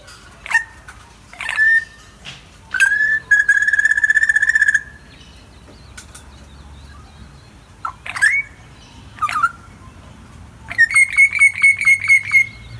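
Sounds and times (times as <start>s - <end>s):
spiny-cheeked honeyeater calling in a front yard: 1.4s - 2.0s, 2.7s - 5.2s, 7.8s - 9.8s, 10.7s - 12.7s.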